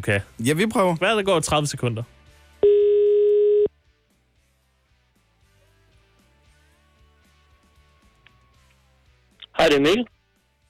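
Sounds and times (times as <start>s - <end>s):
speech: 0.0s - 2.2s, 9.7s - 10.2s
electronic ringing tone of an outgoing phone call: 2.6s - 3.7s.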